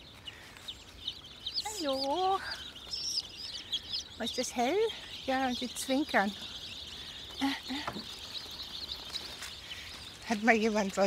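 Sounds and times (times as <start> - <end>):
chicks peeping in the sunshine on a hot day: 0.0 - 11.0
speech: 1.8 - 2.6, 4.2 - 6.5, 10.3 - 11.0.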